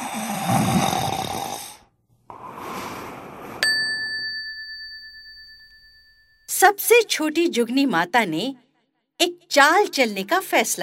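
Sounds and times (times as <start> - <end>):
long rasping snores: 0.0 - 3.6
speech: 0.5 - 1.0, 6.7 - 8.6, 9.2 - 10.8
bright bell-like chime: 3.6 - 6.5.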